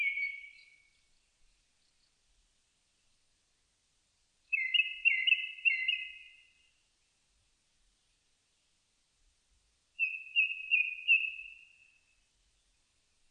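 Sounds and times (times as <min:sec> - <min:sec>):
Japanese thrush fluty whistled song: 0:00.0 - 0:00.9, 0:04.5 - 0:06.5, 0:10.0 - 0:12.1.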